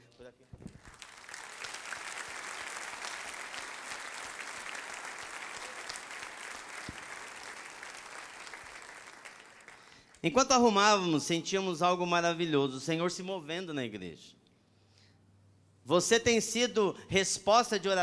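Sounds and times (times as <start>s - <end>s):
speech: 0.3s - 0.7s, 10.2s - 14.4s, 15.9s - 18.0s
large audience applause: 0.7s - 10.2s.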